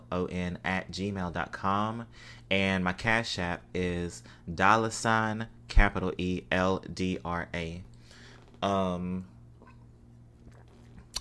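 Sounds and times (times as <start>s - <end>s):
speech: 0.1s - 7.9s, 8.6s - 9.3s
person sipping wine: 9.6s - 11.1s
short sharp slurp of wine: 10.4s - 11.1s.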